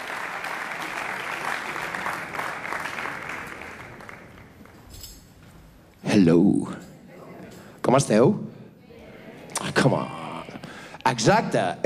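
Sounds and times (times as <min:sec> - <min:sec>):
large concert audience applause: 0:00.0 - 0:04.9
speech: 0:06.2 - 0:06.8, 0:07.9 - 0:08.5, 0:09.8 - 0:10.2, 0:11.1 - 0:11.8.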